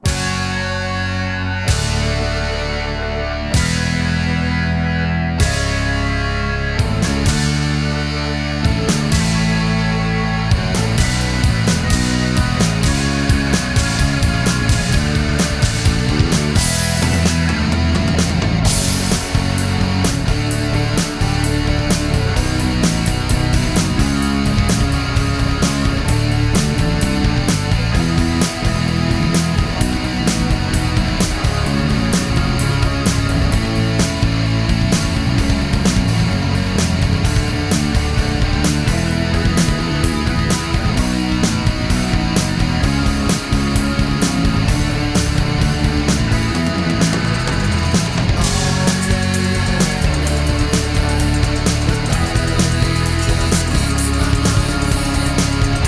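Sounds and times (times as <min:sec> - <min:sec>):
karaoke full mix: 0:00.0 - 0:55.8.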